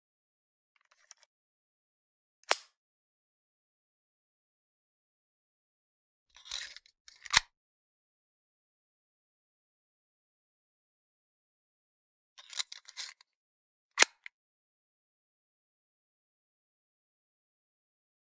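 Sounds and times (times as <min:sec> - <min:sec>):
magazine inserted into 22 pistol: 0:02.5 - 0:02.8, 0:06.5 - 0:07.5, 0:14.0 - 0:14.3.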